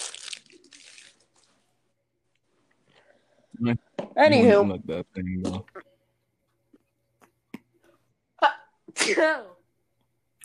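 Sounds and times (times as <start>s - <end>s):
speech: 3.6s - 5.8s, 9.0s - 9.6s
person sneezing: 8.5s - 9.4s.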